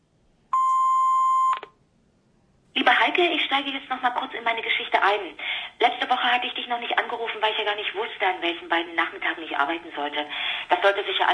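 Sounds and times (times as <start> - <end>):
answering machine beep before the next message: 0.5 - 1.8
soft click: 1.5 - 1.8
speech: 3.2 - 11.3.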